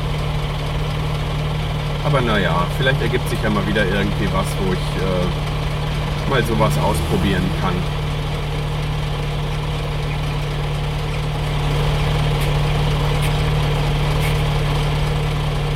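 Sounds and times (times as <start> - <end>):
truck engine idling at a traffic light: 0.0 - 15.7
speech: 2.0 - 5.5, 6.3 - 8.0.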